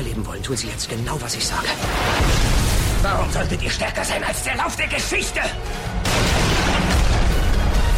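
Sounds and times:
speech: 0.2s - 7.2s
bomb explosion: 1.8s - 4.0s, 6.0s - 7.8s.

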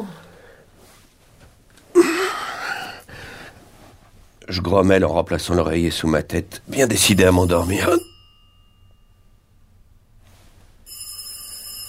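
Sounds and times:
speech: 4.5s - 8.1s
orange push-button telephone ringing: 7.2s - 9.0s, 10.8s - 11.8s.

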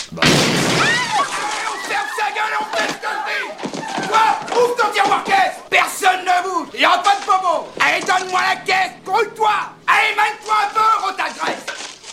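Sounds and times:
gunfire in a film scene: 0.1s - 1.3s
agitated shouting voices: 0.8s - 11.8s.

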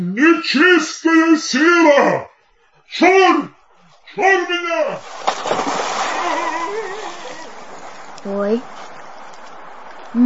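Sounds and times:
speech: 0.0s - 2.3s, 2.9s - 3.6s, 4.2s - 6.4s, 8.2s - 8.8s
water splashing and sloshing: 3.6s - 10.2s
briefcase thrown into a canal splashing into water: 5.0s - 8.2s.

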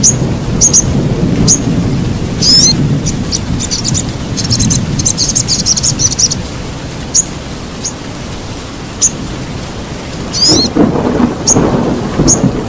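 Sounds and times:
sogok ontong songbird singing labaik song style: 0.0s - 1.7s, 2.4s - 8.1s, 9.0s - 9.2s, 10.2s - 10.8s, 11.4s - 12.6s
loud continuous rain-like noise: 0.0s - 12.6s.

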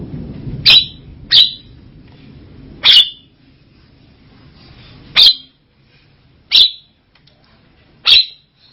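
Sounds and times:
Javan myna giving loud abrupt squeaky notes: 0.7s - 1.7s, 2.8s - 3.3s, 5.1s - 5.5s, 6.5s - 6.9s, 8.0s - 8.5s.

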